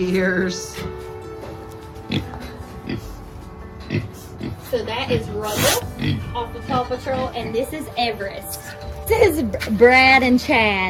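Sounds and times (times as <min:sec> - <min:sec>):
speech: 0:00.0 - 0:01.1, 0:02.1 - 0:03.1, 0:04.7 - 0:10.8
Poland China pig oinking on a farm: 0:02.1 - 0:03.2, 0:03.9 - 0:07.5.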